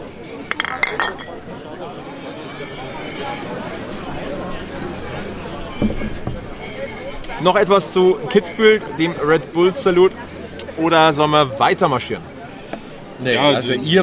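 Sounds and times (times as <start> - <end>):
beer glasses clinking in a toast: 0.2 - 1.7, 2.6 - 7.4
speech: 0.9 - 3.8, 7.4 - 12.3, 13.2 - 14.0.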